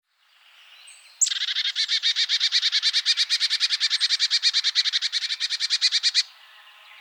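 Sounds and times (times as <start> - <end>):
marsh tit Poecile palustris calling: 1.2 - 6.3.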